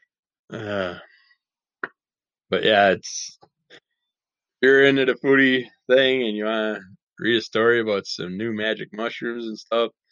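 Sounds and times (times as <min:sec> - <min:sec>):
low voiced burp while eating grapes: 0:00.5 - 0:01.0
speech: 0:00.5 - 0:01.2, 0:02.5 - 0:03.8, 0:04.6 - 0:10.0.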